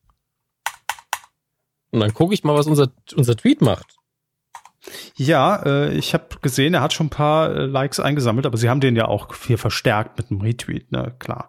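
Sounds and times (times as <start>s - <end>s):
computer keyboard key clicks: 0.6s - 1.3s, 4.6s - 4.8s
speech: 1.9s - 4.0s, 5.2s - 11.4s.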